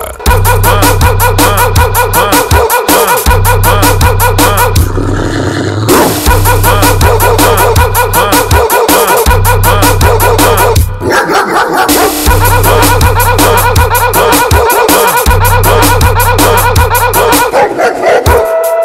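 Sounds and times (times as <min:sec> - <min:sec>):
loud steady electronic beat with heavy bass: 0:00.0 - 0:05.1, 0:05.9 - 0:18.8
laughter: 0:06.2 - 0:10.7, 0:11.7 - 0:18.2
dogs barking and yelping: 0:11.0 - 0:12.3, 0:14.4 - 0:15.3, 0:17.0 - 0:18.8.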